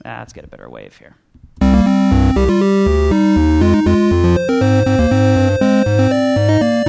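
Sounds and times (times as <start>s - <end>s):
speech: 0.0s - 1.3s
synthesizer arrangement played without amplitude envelopes: 1.6s - 6.8s.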